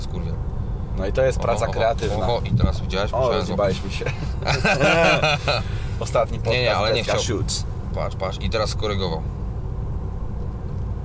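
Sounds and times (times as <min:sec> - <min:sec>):
self-driving electric car interior road and cabin noise while driving: 0:00.0 - 0:11.0
speech: 0:01.0 - 0:09.4
laughter: 0:03.7 - 0:05.9.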